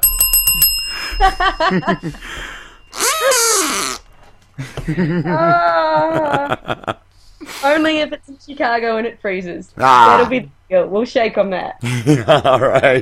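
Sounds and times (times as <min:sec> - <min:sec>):
bright bell dinging: 0:00.0 - 0:04.4
speech: 0:01.2 - 0:02.6, 0:04.6 - 0:12.9
people laughing excitedly: 0:04.6 - 0:07.0, 0:11.8 - 0:12.9
people exclaiming: 0:09.8 - 0:10.4.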